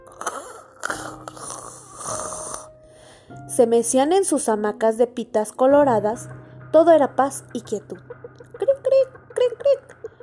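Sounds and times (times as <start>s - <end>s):
several sleepers snoring: 0.1s - 2.7s
speech: 3.6s - 8.1s.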